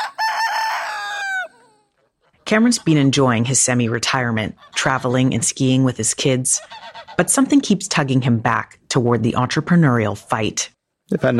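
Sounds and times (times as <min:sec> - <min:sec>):
rooster crowing: 0:00.0 - 0:02.0
speech: 0:02.5 - 0:11.3.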